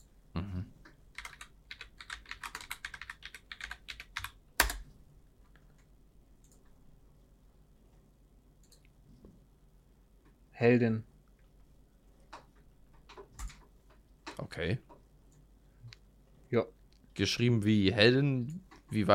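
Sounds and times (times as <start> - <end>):
typing on a computer keyboard to run an online search: 1.1 - 4.9, 12.4 - 13.7
speech: 10.6 - 11.1, 14.6 - 14.9, 16.5 - 19.1.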